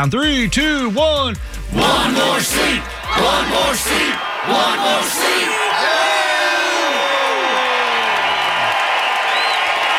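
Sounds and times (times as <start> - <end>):
speech: 0.0 - 5.9
dense crowd cheering and whooping: 2.0 - 9.9.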